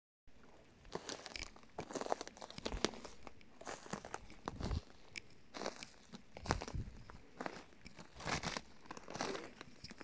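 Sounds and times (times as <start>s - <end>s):
footsteps in undergrowth: 0.9s - 10.0s.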